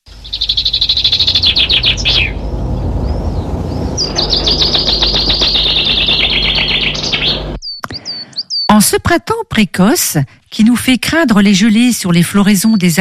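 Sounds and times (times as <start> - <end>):
great tit singing: 0.0 - 8.9, 12.3 - 12.9
speech: 9.0 - 12.9.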